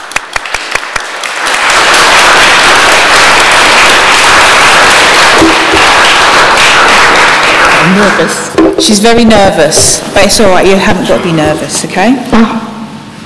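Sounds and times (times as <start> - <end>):
church audience applauding: 0.0 - 9.0
speech: 8.0 - 12.7.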